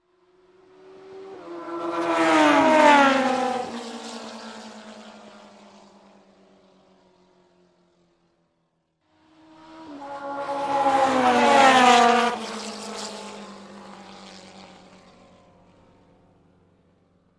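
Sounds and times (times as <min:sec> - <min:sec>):
racing motorcycles passing by: 0:00.6 - 0:06.2, 0:09.2 - 0:16.5.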